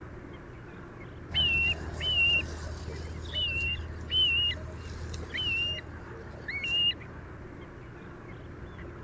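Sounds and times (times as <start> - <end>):
ringed plover calling: 1.3 - 7.2.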